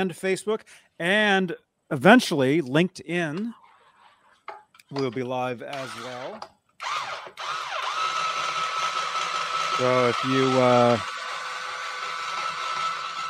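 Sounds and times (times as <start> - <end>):
speech: 0.0 - 3.6, 4.9 - 7.7, 9.8 - 11.1
blender running: 5.7 - 13.2.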